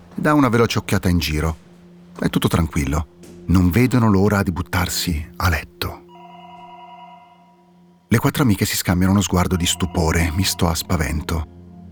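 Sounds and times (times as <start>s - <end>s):
speech: 0.2s - 6.0s, 8.1s - 11.6s
telephone ringing with steady electronic tone: 6.1s - 8.0s, 9.3s - 11.0s.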